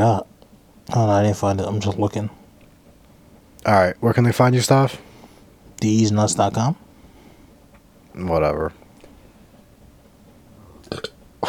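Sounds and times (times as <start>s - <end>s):
speech: 0.0s - 0.3s, 0.9s - 2.4s, 3.6s - 5.1s, 5.8s - 6.8s, 8.2s - 8.8s, 10.9s - 11.4s
burp: 10.8s - 11.4s.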